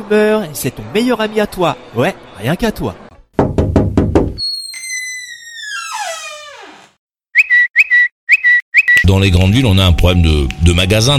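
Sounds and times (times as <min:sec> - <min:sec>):
speech: 0:00.0 - 0:03.0, 0:09.1 - 0:11.1
quick loud knocks: 0:03.4 - 0:04.4
long descending whistling tone: 0:07.4 - 0:09.1.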